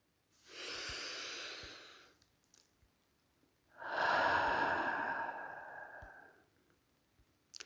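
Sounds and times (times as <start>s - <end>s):
deep rejuvenating breath: 0.4s - 2.2s, 3.8s - 6.5s.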